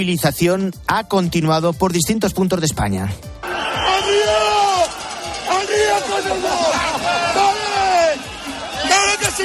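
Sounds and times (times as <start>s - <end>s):
speech: 0.0s - 4.2s
farmers' protest crowd shouting and yelling: 3.4s - 9.4s.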